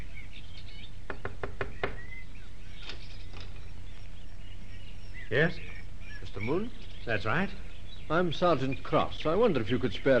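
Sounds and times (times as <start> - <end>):
birds chirping faintly outdoors: 0.0 - 10.1
knocking on the wooden front door of a shack on a chicken farm: 1.1 - 2.1
speech: 5.3 - 10.1.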